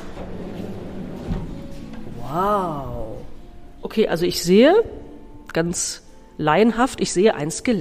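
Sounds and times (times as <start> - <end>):
drawer sliding open with a low rumbling scrape: 0.0 - 2.2
speech: 2.3 - 3.0, 3.9 - 7.7.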